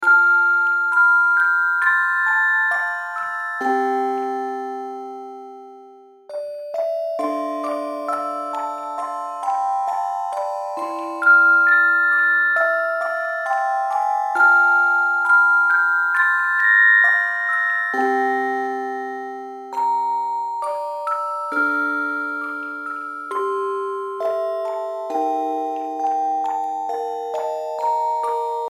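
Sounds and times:
music box lullaby loop: 0.0s - 28.7s.

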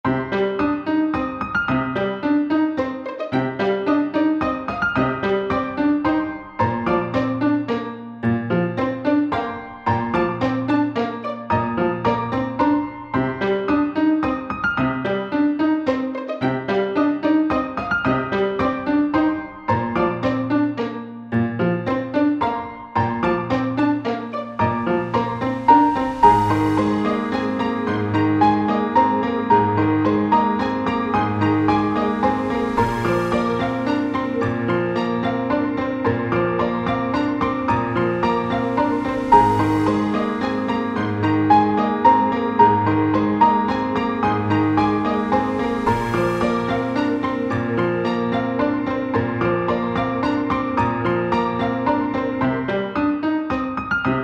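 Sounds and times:
piano piece: 0.0s - 54.2s.

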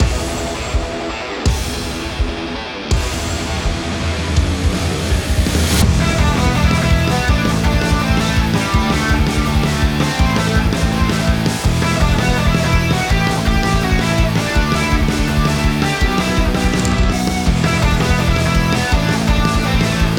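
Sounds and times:
electric guitar music for a boss battle: 0.0s - 20.1s.

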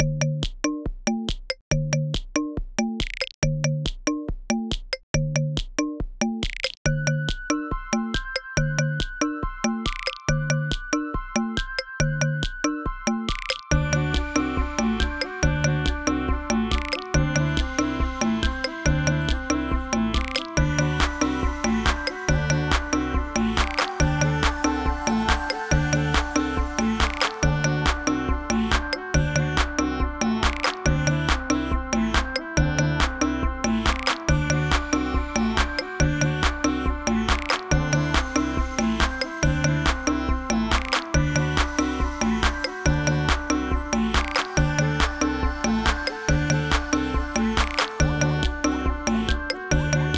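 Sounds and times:
bouncy menu music loop: 0.0s - 50.1s.

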